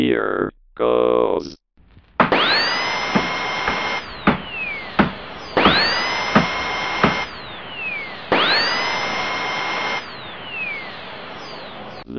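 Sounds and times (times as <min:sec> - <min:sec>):
speech: 0:00.0 - 0:01.5
sharp clicks and knocks: 0:01.9 - 0:07.4
power drill boring through a computer hard drive: 0:02.2 - 0:12.1.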